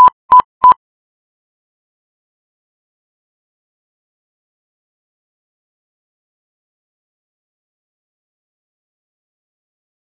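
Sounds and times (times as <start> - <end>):
morse code beacon beeps: 0.0 - 0.8.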